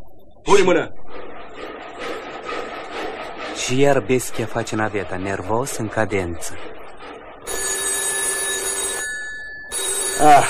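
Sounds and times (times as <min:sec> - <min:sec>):
speech: 0:00.5 - 0:01.0, 0:03.6 - 0:06.8, 0:10.2 - 0:10.4
telephone ringing: 0:07.5 - 0:10.4.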